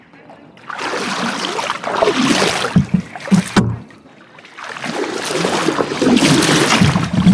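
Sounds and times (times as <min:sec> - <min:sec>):
river water sloshing and splashing around a flat punt: 0:00.3 - 0:07.3
wooden knocks of a punt pole: 0:02.7 - 0:03.9.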